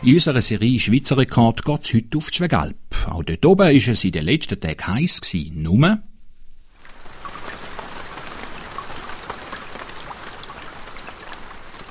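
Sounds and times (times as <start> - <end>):
speech: 0.0 - 6.1
steady rain falling on a mountain pasture: 6.7 - 11.9.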